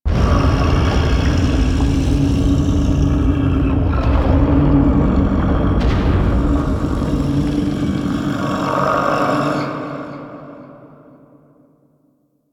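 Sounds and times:
shaking lab rumble ambience: 0.1 - 8.8.

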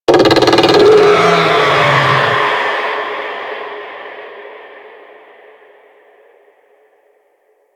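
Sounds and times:
monster vocal attack growl: 0.1 - 2.9.

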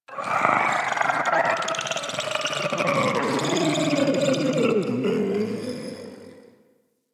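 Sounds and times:
vocals: 0.0 - 6.7.

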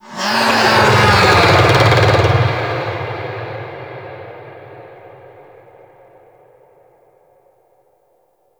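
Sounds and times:
monster vocal attack growl: 0.0 - 4.3.

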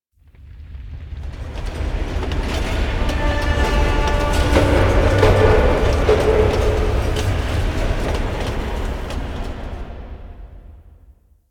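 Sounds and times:
asteroid mining machines ambience: 1.3 - 10.5.

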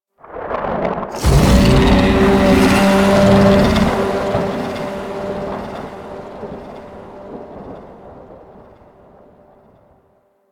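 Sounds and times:
sun monster bellow: 1.2 - 8.0.

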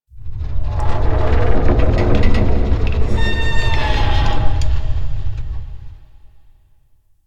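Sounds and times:
low creaks: 0.1 - 6.4.

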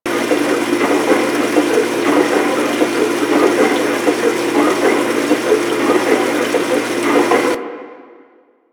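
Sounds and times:
steady ocean sound: 0.0 - 7.6.

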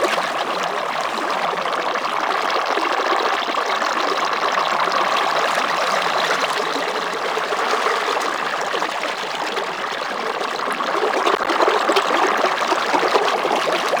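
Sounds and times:
vehicle movement bubble loop: 0.0 - 13.9.

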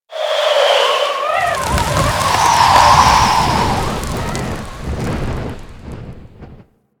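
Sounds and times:
wind blowing debris in a settlement: 1.2 - 6.7.

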